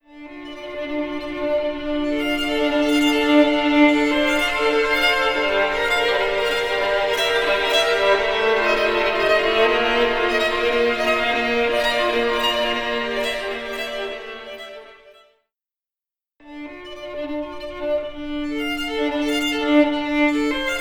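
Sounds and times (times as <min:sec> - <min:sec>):
violin in a marble atrium: 0:00.0 - 0:15.4, 0:16.4 - 0:20.7.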